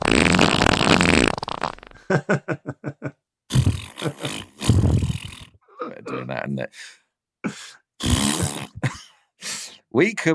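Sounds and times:
fart sound effect: 0.0s - 2.0s, 3.5s - 5.6s, 8.0s - 8.8s
laughter: 2.0s - 3.2s
speech: 2.1s - 2.7s, 6.3s - 7.0s, 10.0s - 10.3s.

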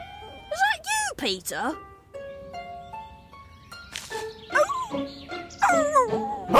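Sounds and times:
dog whimpering and whining: 0.0s - 1.0s, 4.6s - 5.0s, 5.6s - 6.5s
speech: 1.2s - 1.9s, 4.9s - 6.5s.

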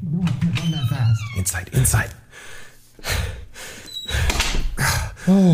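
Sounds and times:
heavy door sliding: 0.2s - 1.7s
speech: 1.4s - 3.3s, 5.3s - 5.5s.

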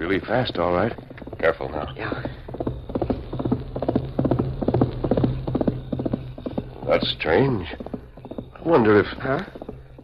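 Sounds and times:
speech: 0.0s - 2.4s, 6.9s - 7.9s, 8.6s - 9.6s
horse hooves galloping on hard ground: 0.0s - 10.0s
low rumble: 0.8s - 8.5s.

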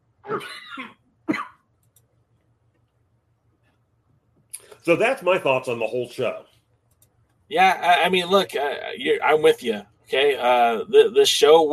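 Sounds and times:
speech: 0.3s - 1.4s, 4.8s - 6.5s, 7.5s - 11.7s
harsh raspy coughs: 0.3s - 1.6s.

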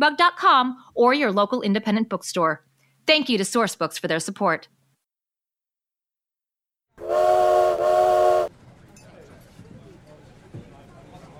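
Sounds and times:
speech: 0.0s - 4.8s
loud steam train whistle blasts: 7.0s - 8.5s.

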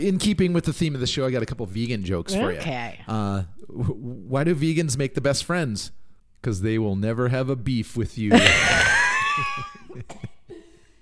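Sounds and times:
speech: 0.0s - 10.1s
person laughing: 8.3s - 10.2s
person coughing while laughing: 9.9s - 10.8s.

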